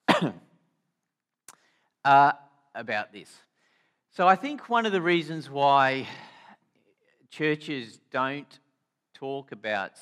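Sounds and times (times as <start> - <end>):
cough and throat clearing: 0.0 - 0.6
speech: 0.2 - 0.4, 2.0 - 3.5, 4.1 - 6.3, 7.3 - 8.6, 9.2 - 10.0.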